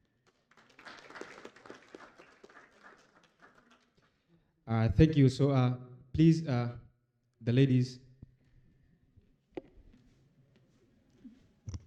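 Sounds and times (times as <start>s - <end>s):
audience applause: 0.3s - 4.0s
speech: 4.7s - 6.8s, 7.4s - 8.0s.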